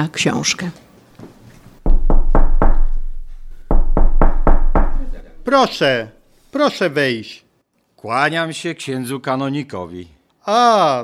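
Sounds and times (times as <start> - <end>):
speech: 0.0 - 0.8, 5.5 - 7.4, 8.0 - 11.0
firm knocking on a wooden door: 1.9 - 5.8.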